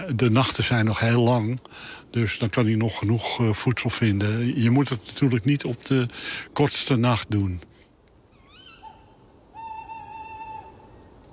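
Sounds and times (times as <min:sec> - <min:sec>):
speech: 0:00.1 - 0:07.7
owl hooting: 0:08.3 - 0:11.2.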